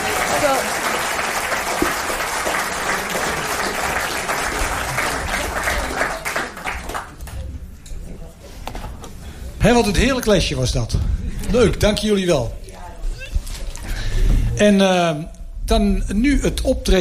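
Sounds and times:
crowd clapping: 0:00.0 - 0:07.6
speech: 0:09.6 - 0:12.6, 0:14.6 - 0:16.9.

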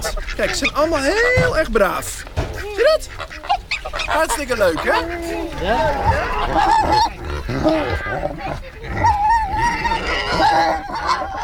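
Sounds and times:
laughter: 0:00.0 - 0:02.0, 0:02.6 - 0:11.4
other farmyard animal calls: 0:00.0 - 0:11.4
piglets grunting and squealing wanting to be fed: 0:00.0 - 0:11.4
speech: 0:00.4 - 0:03.5, 0:04.1 - 0:09.1.

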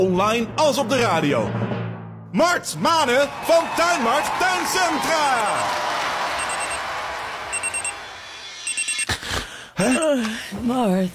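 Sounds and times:
speech: 0:00.1 - 0:05.9, 0:09.8 - 0:11.1
telephone ringing in high trilling bursts: 0:05.4 - 0:05.8, 0:06.4 - 0:06.8, 0:07.5 - 0:08.0, 0:08.6 - 0:09.1.

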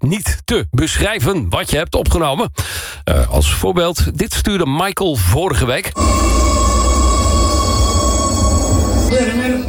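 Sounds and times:
speech: 0:00.0 - 0:06.7
high electrical whine of metro train: 0:06.0 - 0:09.6
loud steady metro train rumble: 0:06.0 - 0:09.6
metro door warning tones: 0:06.0 - 0:09.6
metro doors closing inside a train in Oslo: 0:06.0 - 0:09.6
indistinct metro announcement voice: 0:08.9 - 0:09.6.

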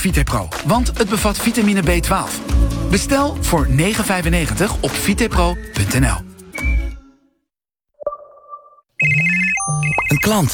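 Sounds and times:
speech: 0:00.0 - 0:06.7, 0:10.0 - 0:10.5
phone ringtone electronic chime: 0:08.1 - 0:10.4.

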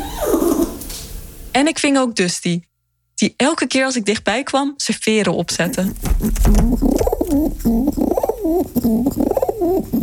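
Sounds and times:
pigeon cooing: 0:00.0 - 0:00.8, 0:05.7 - 0:10.0
speech: 0:01.6 - 0:10.0.

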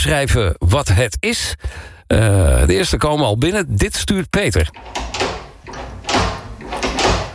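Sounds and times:
speech: 0:00.0 - 0:05.2
new toilet door handle clacking and rattling: 0:04.7 - 0:07.3.

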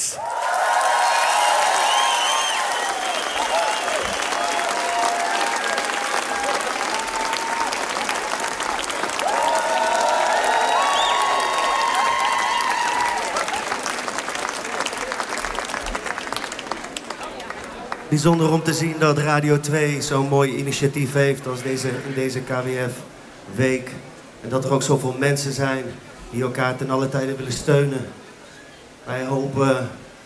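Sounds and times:
cheering voices: 0:00.0 - 0:18.6
large audience applauding: 0:00.0 - 0:18.9
scattered whistles from the audience: 0:01.7 - 0:04.3, 0:10.7 - 0:11.6
speech: 0:18.1 - 0:28.2, 0:29.1 - 0:30.0.

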